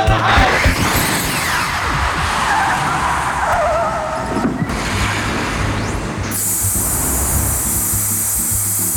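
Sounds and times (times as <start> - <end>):
DeLorean car tires skidding and screeching: 0.2 - 8.6
DeLorean car engine revving: 0.2 - 8.9.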